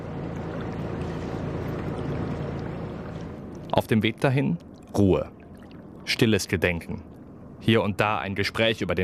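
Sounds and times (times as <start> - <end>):
water rushing past a boat on the Rhine: 0.0 - 6.5
boat engine humming on the Rhine: 0.0 - 9.0
speech: 3.8 - 5.4, 6.1 - 9.0.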